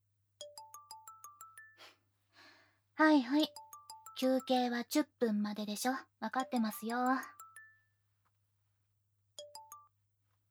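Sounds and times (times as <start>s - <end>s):
smartphone ringtone of bright bell-like tones: 0.4s - 1.8s, 3.5s - 4.5s, 6.8s - 7.9s, 9.4s - 9.9s
speech: 3.0s - 3.6s, 4.2s - 7.4s.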